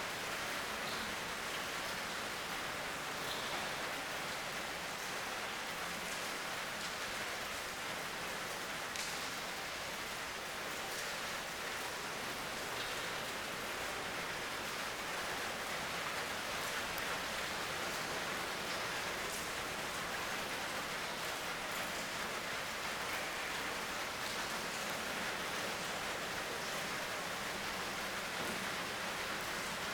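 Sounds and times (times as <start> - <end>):
heavy rain heard inside a hut: 0.0 - 29.9.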